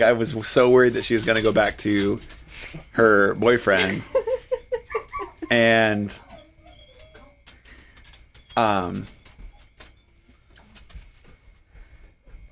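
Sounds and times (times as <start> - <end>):
speech: 0.0 - 4.2, 5.5 - 6.3, 8.6 - 9.2
laughter: 3.7 - 5.8
dog yelping in a room: 4.7 - 7.6, 8.3 - 10.3.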